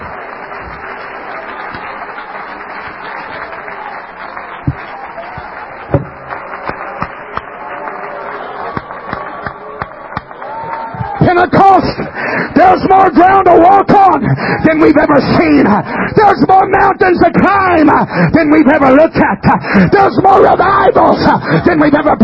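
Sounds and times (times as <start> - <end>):
audience clapping hands: 0.0 - 16.4
speech: 11.4 - 12.0, 12.7 - 22.2.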